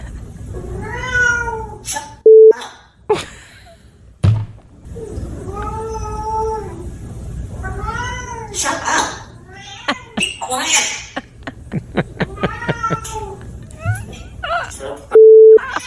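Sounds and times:
cats meowing and yowling loudly: 0.7 - 1.8, 5.0 - 6.9, 7.6 - 8.6, 12.3 - 13.4
short electronic beeps: 2.3 - 2.6, 15.2 - 15.6
laughter: 9.8 - 13.3.

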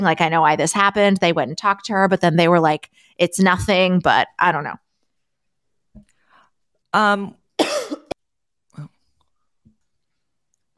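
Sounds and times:
speech: 0.0 - 4.8, 6.9 - 8.0
person coughing harshly: 7.6 - 8.2.

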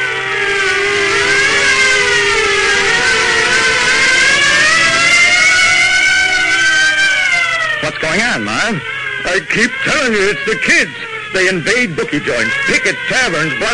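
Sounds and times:
low rumble of traffic: 0.0 - 13.7
sirens wailing: 0.0 - 13.7
speech: 8.6 - 13.7.

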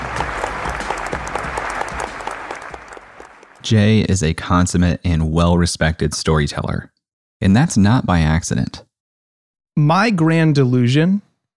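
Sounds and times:
audience clapping: 0.0 - 4.0
speech: 3.7 - 8.9, 9.8 - 11.3.

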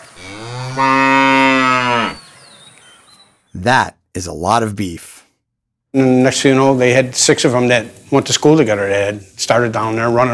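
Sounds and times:
cow mooing: 0.0 - 2.2
speech: 0.2 - 1.0, 3.6 - 5.2, 5.9 - 10.3.

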